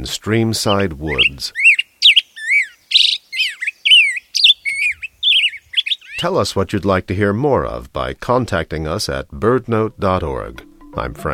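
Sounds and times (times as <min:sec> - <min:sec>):
speech: 0:00.0 - 0:01.7, 0:06.2 - 0:11.3
black-headed grosbeak singing: 0:00.0 - 0:06.3.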